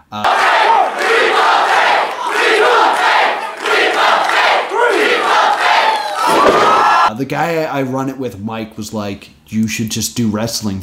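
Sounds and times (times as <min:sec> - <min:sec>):
speech: 0:00.1 - 0:00.4, 0:07.2 - 0:10.8
wrestling crowd chanting and cheering: 0:00.2 - 0:07.1.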